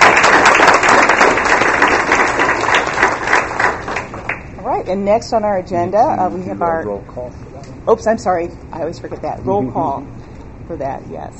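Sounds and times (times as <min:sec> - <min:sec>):
audience applause: 0:00.0 - 0:04.5
speech: 0:04.9 - 0:11.3.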